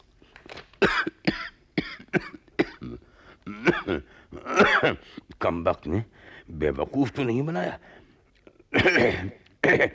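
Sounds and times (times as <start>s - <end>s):
harsh coughs: 0.8s - 5.0s, 8.7s - 9.9s
throat clearing: 0.9s - 5.0s, 8.8s - 9.9s
speech: 3.7s - 7.9s, 8.7s - 9.9s.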